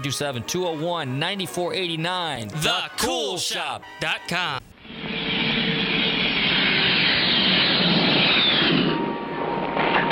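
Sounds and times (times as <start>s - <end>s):
speech: 0.0s - 4.7s
Grumman Tiger aircraft jet engine roaring: 4.8s - 10.1s.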